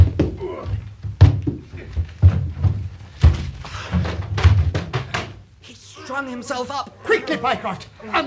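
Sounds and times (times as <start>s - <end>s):
heavy thuds and bangs against a locked door being forced open: 0.0s - 5.4s
speech: 6.2s - 8.2s.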